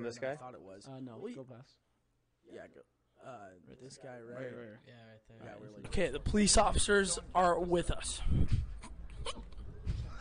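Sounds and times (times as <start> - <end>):
speech: 0.0 - 1.9, 2.5 - 9.5
hiccups: 8.8 - 9.6.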